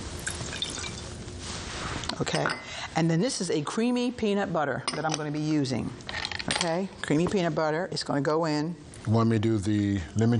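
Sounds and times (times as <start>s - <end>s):
water pouring into a pot: 0.2s - 1.2s
speech: 2.2s - 10.3s.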